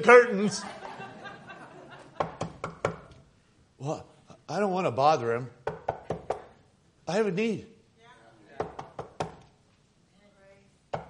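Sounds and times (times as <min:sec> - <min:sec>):
speech: 0:00.0 - 0:00.8, 0:03.8 - 0:05.6, 0:07.1 - 0:07.7
laughter: 0:00.4 - 0:02.4
knocking on a door: 0:02.2 - 0:03.2, 0:05.6 - 0:06.5, 0:08.6 - 0:09.5.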